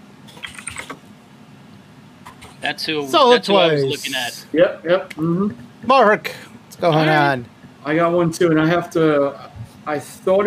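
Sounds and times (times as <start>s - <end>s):
low steady hum: 0.0s - 10.4s
computer keyboard typing: 0.3s - 1.0s
speech: 2.6s - 10.4s.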